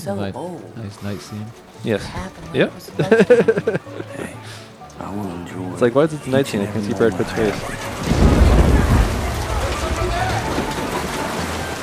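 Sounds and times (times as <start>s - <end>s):
speech: 0.0s - 8.2s
laughter: 0.0s - 11.8s
steady rain hissing across a surface: 0.0s - 11.8s
heavier low rumble: 7.4s - 11.8s.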